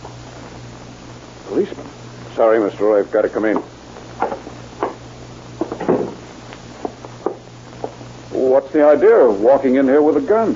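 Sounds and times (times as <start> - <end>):
low steady hum: 0.0 - 10.5
speech: 1.5 - 4.5, 8.6 - 10.5
door being opened with wooden clunks: 5.6 - 6.2.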